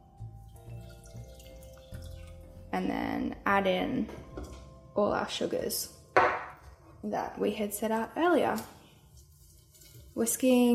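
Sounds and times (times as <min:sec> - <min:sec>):
warm liquid poured into a large mixing bowl in a kitchen: 0:00.4 - 0:02.7
speech: 0:02.8 - 0:04.3, 0:05.0 - 0:06.0, 0:07.0 - 0:08.8, 0:10.2 - 0:10.7.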